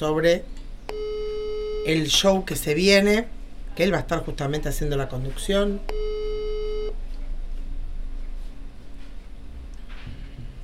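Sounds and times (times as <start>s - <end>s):
speech: 0.0s - 0.6s, 1.8s - 6.0s
low constant hum: 0.0s - 10.6s
telephone ringing tone beep during unanswered call: 0.9s - 2.2s, 5.9s - 6.9s.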